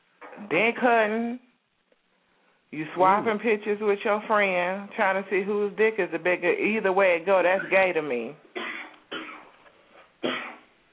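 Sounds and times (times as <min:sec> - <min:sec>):
speech: 0:00.4 - 0:01.5, 0:02.7 - 0:08.4
man coughing: 0:08.6 - 0:09.5, 0:10.2 - 0:10.6.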